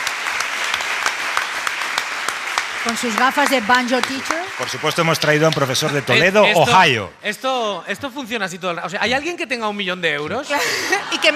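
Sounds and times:
audience applause at a live show: 0.0 - 7.0
speech: 2.8 - 11.3
laughter: 10.4 - 11.3.

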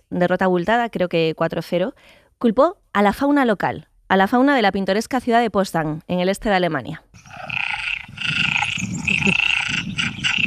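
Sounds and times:
speech: 0.1 - 7.6, 9.3 - 9.5
dense chorus of frogs croaking with raspy rattles and trilling: 7.2 - 10.4.

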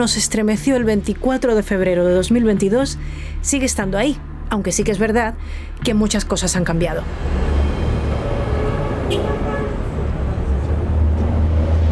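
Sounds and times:
speech: 0.0 - 7.4
morning city traffic in Kyiv rumbling: 0.0 - 11.9
passing vehicle noise: 6.6 - 11.9.

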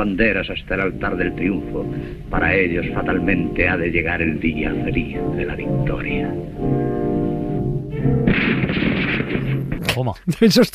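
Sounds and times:
speech: 0.0 - 6.8, 10.0 - 10.7
sustained tones: 0.0 - 9.8
burst of gunfire from a firing squad: 8.2 - 9.8
sharp separate gunshots: 8.2 - 9.9.

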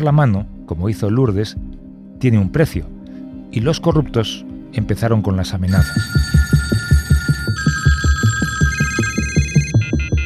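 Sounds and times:
speech: 0.0 - 2.9, 3.5 - 6.2
landline telephone ringing at home: 5.7 - 10.2.

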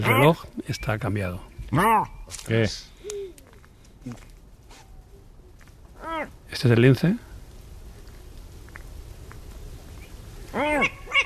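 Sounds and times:
owl calling: 0.0 - 1.0, 1.7 - 2.3, 6.0 - 6.4, 10.0 - 11.2
speech: 0.0 - 2.9, 4.0 - 4.3, 6.2 - 7.3
hiss: 0.0 - 11.2.

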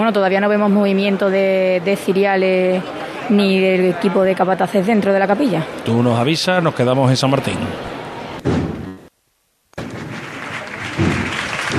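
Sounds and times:
speech: 0.0 - 8.0
crowd clapping in a square during a procession: 9.8 - 11.7.

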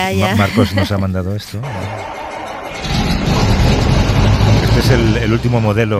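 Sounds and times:
laughter: 0.0 - 2.0
speech: 0.0 - 2.2, 4.5 - 5.9
old tractor engine starting and running: 1.6 - 5.9.

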